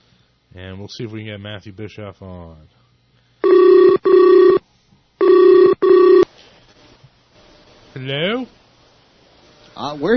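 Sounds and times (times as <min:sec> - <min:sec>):
speech: 0:00.5 - 0:02.8, 0:08.0 - 0:08.6, 0:09.8 - 0:10.1
telephone ringing with electronic tones for a conference call: 0:03.4 - 0:04.6, 0:05.2 - 0:06.2.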